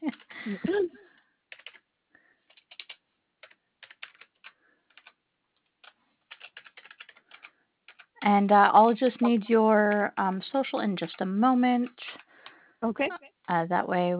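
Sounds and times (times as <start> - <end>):
typing on a computer keyboard: 0.1 - 0.4, 1.5 - 8.2
speech: 8.3 - 12.2, 12.8 - 14.1.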